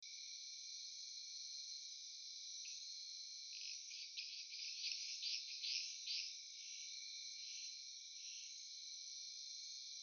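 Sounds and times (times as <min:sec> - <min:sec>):
Agalychnis dacnicolor frog: 0:02.6 - 0:10.0.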